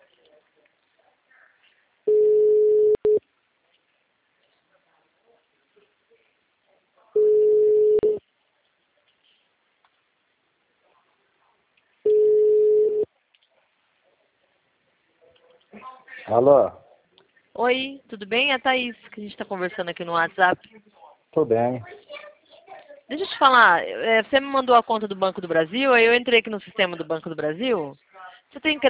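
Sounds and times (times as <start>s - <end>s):
telephone ringback tone on a call: 2.1s - 3.2s, 7.2s - 8.2s, 12.1s - 13.1s
speech: 16.3s - 16.8s, 17.6s - 22.0s, 23.1s - 28.8s.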